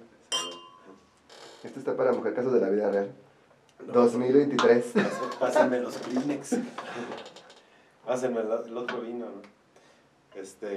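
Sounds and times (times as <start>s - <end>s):
faint room murmur: 0.0s - 10.7s
wine glasses clinking in a toast: 0.3s - 1.0s
speech: 1.6s - 7.4s, 8.1s - 9.6s, 10.4s - 10.7s
laughter: 4.9s - 7.3s.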